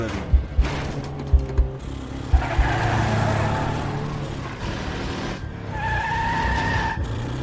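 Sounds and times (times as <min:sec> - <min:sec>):
fleeing car engine revving hard through back alleys and streets: 0:00.0 - 0:07.4
car tires squealing and skidding through sharp turns: 0:01.9 - 0:07.4.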